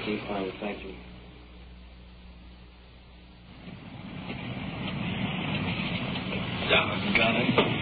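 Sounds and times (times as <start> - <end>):
speech: 0.0 - 1.1
heavy rain: 3.5 - 7.8.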